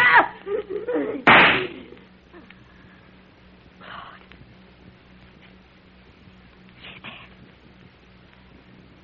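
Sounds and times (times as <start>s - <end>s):
laughter: 0.4s - 2.0s
single gunshot fired at range: 1.3s - 1.7s.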